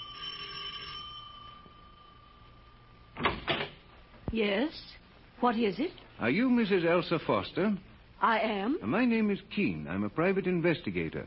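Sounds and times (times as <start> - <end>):
doorbell ringing with a bright tone: 0.0 - 3.2
speech: 4.3 - 11.2.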